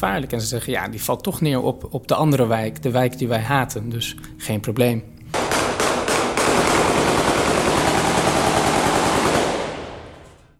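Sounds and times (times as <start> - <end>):
speech: 0.0 - 5.2
heavy gunfire shot into the air at a funeral: 5.3 - 10.4.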